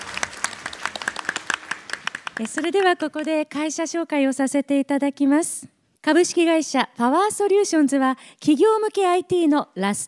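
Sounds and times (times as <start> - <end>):
audience applause at a corporate investor-relations event: 0.0 - 2.8
speech: 2.4 - 10.0.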